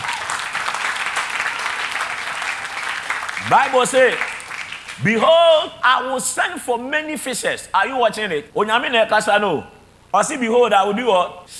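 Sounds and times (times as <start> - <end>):
church audience applause: 0.0 - 5.3
speech: 3.4 - 4.3, 5.0 - 11.5.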